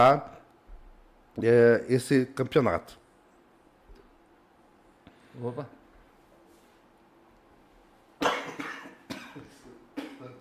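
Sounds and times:
speech: 0.0 - 0.3, 1.4 - 3.0, 5.4 - 5.8
man coughing: 8.2 - 10.3.

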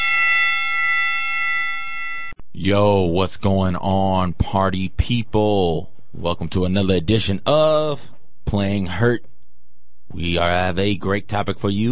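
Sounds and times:
bright metallic bell ringing: 0.0 - 2.4
speech: 2.6 - 9.3, 10.1 - 11.9.

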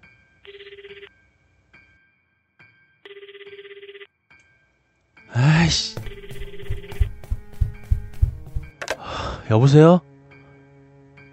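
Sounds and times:
telephone bell ringing: 0.4 - 1.2, 3.0 - 4.1, 6.0 - 7.1
speech: 5.4 - 6.1, 9.5 - 10.1.

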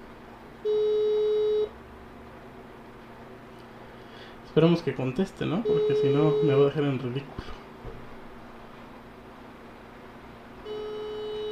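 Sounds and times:
telephone ringback tone on an outgoing call: 0.6 - 1.7, 5.6 - 6.7, 10.6 - 11.5
speech: 4.5 - 7.6.

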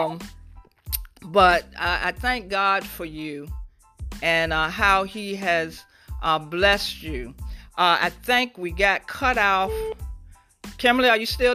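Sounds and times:
speech: 0.0 - 0.4, 1.2 - 3.6, 4.2 - 10.0, 10.8 - 11.5
people talking in a phone conversation: 9.4 - 10.0
incoming call tone beep on a phone line: 9.7 - 10.0.

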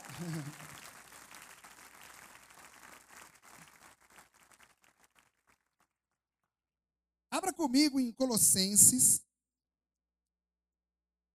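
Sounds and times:
laughter: 0.0 - 0.8
crowd applauding: 0.0 - 5.8
speech: 0.2 - 0.7, 7.6 - 9.3.

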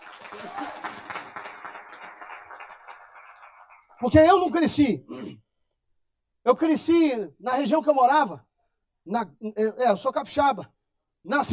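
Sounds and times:
audience applause during a sermon: 0.0 - 4.2
speech: 4.0 - 5.4, 6.5 - 11.5.

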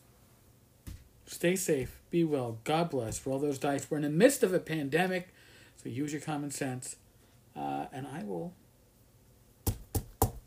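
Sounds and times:
speech: 1.3 - 7.0, 7.6 - 8.6
knocking on an iPad: 9.7 - 10.4.

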